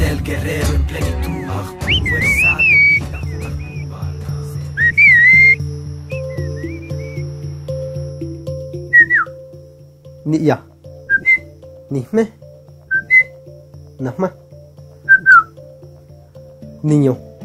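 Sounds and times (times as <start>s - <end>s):
speech: 0.2s - 1.8s, 10.3s - 10.7s, 11.9s - 12.4s, 14.0s - 14.4s, 16.8s - 17.3s
steady low musical backdrop: 1.1s - 17.4s
Mazatec whistled speech: 1.9s - 3.8s, 11.1s - 11.4s, 12.9s - 13.3s, 15.1s - 15.5s.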